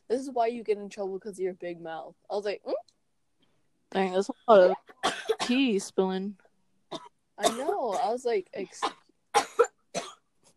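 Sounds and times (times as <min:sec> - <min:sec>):
speech: 0:00.1 - 0:03.0, 0:03.9 - 0:09.0
young girl coughing raspily: 0:04.9 - 0:05.6, 0:06.9 - 0:10.3.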